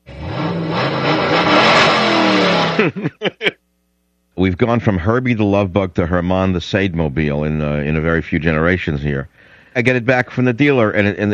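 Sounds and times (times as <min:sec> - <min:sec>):
car engine revving with throttle blips: 0:00.0 - 0:03.0
laughter: 0:02.6 - 0:03.6
speech: 0:02.8 - 0:03.6, 0:04.4 - 0:11.3.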